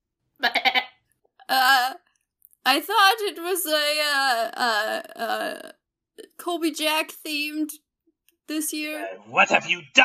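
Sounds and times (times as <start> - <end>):
voice imitating a spotted goat bleating at a ritual: 0.4 - 0.9
speech: 2.6 - 5.8, 6.4 - 7.8, 8.5 - 10.0.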